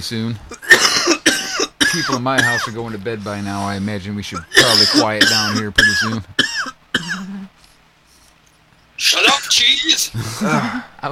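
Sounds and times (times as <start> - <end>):
speech: 0.0 - 0.9, 1.9 - 6.4, 9.6 - 11.1
man coughing with a throaty rasp: 0.5 - 7.3, 10.2 - 10.9.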